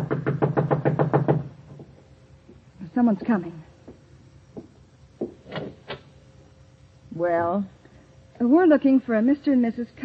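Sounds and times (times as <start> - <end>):
knocking on a door: 0.0 - 2.0, 4.6 - 5.8
speech: 3.0 - 3.6, 7.2 - 7.8, 8.4 - 10.0.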